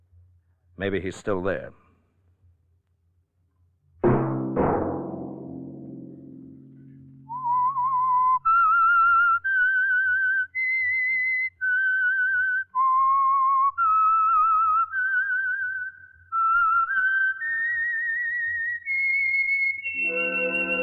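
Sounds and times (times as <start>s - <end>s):
speech: 0.8s - 1.8s
two resonant struck notes ringing: 4.1s - 7.8s, 19.9s - 20.8s
solo whistled melody: 7.0s - 20.8s.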